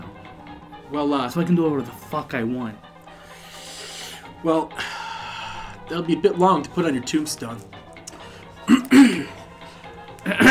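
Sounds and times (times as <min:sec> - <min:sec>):
speech: 0:00.9 - 0:02.9, 0:04.4 - 0:04.9, 0:05.9 - 0:07.8, 0:08.7 - 0:09.4, 0:10.2 - 0:10.4
man clearing his throat: 0:08.7 - 0:09.4, 0:10.2 - 0:10.4.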